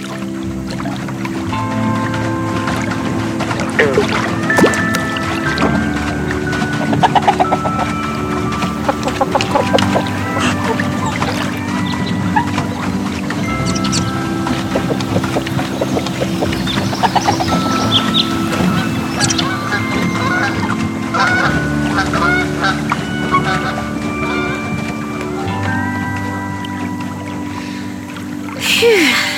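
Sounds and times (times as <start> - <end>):
lake water sloshing: 0.0 - 29.3
pedal boat moving across a lake with low churning hum: 0.0 - 29.3
faint bird or duck calls: 3.6 - 24.6.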